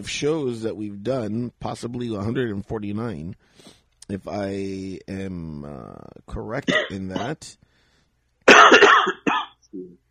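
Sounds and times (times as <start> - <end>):
speech: 0.0 - 7.7
low throat-clearing rumble: 6.7 - 7.4
person coughing: 6.7 - 7.4, 8.5 - 9.6.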